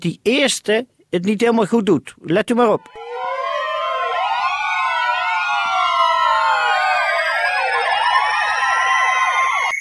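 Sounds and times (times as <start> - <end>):
speech: 0.0 - 3.0
several sirens wailing at once: 2.7 - 9.7.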